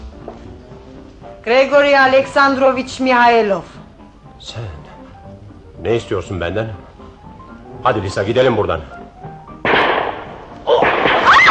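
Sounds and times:
speech: 0:01.4 - 0:03.7, 0:04.4 - 0:04.8, 0:05.8 - 0:06.9, 0:07.8 - 0:09.0
gunshot sound effect in a radio drama: 0:09.6 - 0:11.4.

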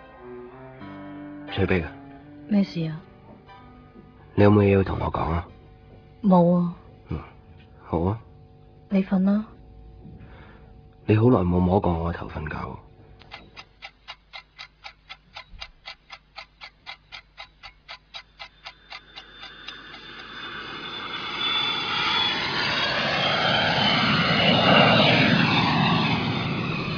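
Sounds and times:
speech: 0:01.6 - 0:03.1, 0:04.4 - 0:05.5, 0:06.2 - 0:07.3, 0:07.9 - 0:08.2, 0:08.9 - 0:09.5, 0:11.1 - 0:12.8
steady even ticking: 0:13.2 - 0:20.4
jet engine roar of an airplane taking off: 0:19.0 - 0:26.9.

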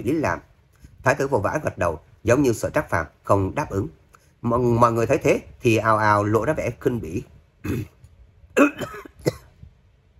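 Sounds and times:
speech: 0:00.0 - 0:08.0, 0:08.6 - 0:09.4
ailing emperor coughing violently and dryly, coughing up blood: 0:07.6 - 0:08.0, 0:08.6 - 0:09.6.

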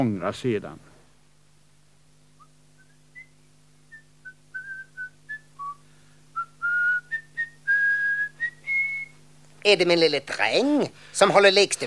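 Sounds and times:
speech: 0:00.0 - 0:00.9, 0:09.6 - 0:11.8
faint steady low hum: 0:00.0 - 0:11.8
man whistling a lively tune: 0:02.4 - 0:09.2.

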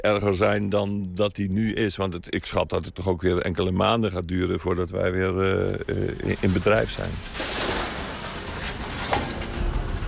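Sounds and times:
speech: 0:00.0 - 0:07.7
large metal-cutting machine shearing scrap iron fed by a crane: 0:07.2 - 0:10.0.

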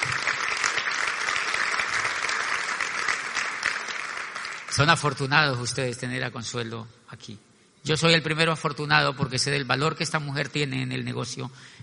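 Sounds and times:
audience applause at a business event: 0:00.0 - 0:05.1
speech: 0:04.8 - 0:11.8.

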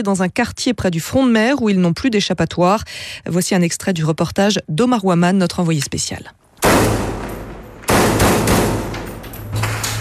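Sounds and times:
speech: 0:00.0 - 0:07.1
sniper gunshots in a battle in an urban district near a seafront: 0:06.6 - 0:09.1.

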